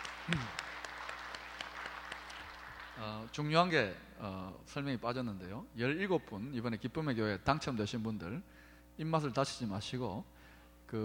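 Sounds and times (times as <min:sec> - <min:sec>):
audience applauding: 0:00.0 - 0:03.2
speech: 0:00.3 - 0:00.6, 0:03.0 - 0:10.3.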